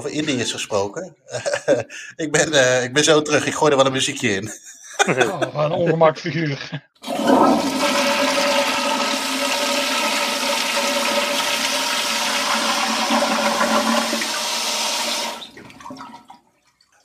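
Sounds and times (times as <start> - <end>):
speech: 0.0 - 7.9
laughter: 1.2 - 2.3, 4.4 - 6.8
toilet flushing: 7.0 - 17.0.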